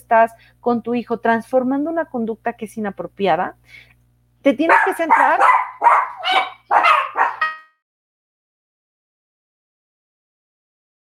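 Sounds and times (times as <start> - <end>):
speech: 0.1 - 6.4
dogs barking excitedly: 4.7 - 7.6.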